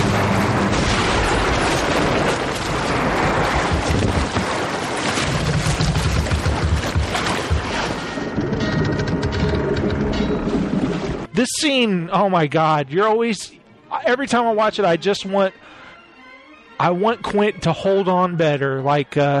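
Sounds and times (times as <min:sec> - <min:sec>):
shark crashing onto the stern of a boat: 0:00.0 - 0:08.4
wind roar: 0:00.0 - 0:11.3
sustained splashing: 0:00.7 - 0:08.3
speech: 0:11.6 - 0:15.6, 0:16.8 - 0:19.3.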